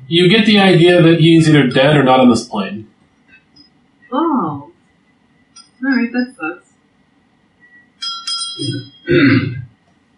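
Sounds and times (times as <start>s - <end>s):
speech: 0.1s - 2.9s, 4.1s - 4.7s, 5.8s - 6.6s, 8.6s - 9.6s
bell being fiddled with: 8.0s - 9.1s.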